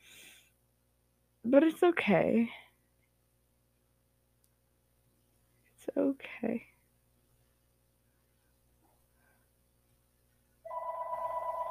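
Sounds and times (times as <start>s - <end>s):
speech: 1.4s - 2.6s, 6.0s - 6.7s
telephone ringing with electronic trill: 10.7s - 11.7s.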